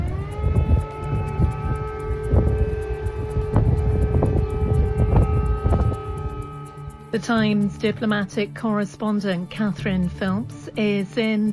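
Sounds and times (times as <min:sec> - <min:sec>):
dull rumbling: 0:00.0 - 0:08.9
air raid sirens wailing over a city: 0:00.0 - 0:09.2
speech: 0:07.1 - 0:11.5.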